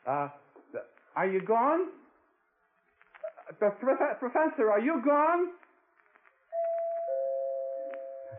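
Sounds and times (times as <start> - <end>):
speech: 0.1 - 2.0, 3.5 - 5.6
doorbell two-tone chime: 6.6 - 8.3.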